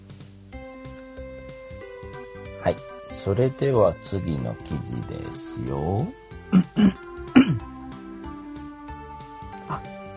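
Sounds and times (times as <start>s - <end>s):
speech: 2.6s - 7.0s
person coughing: 6.5s - 7.7s
throat clearing: 6.5s - 7.7s, 9.7s - 9.9s.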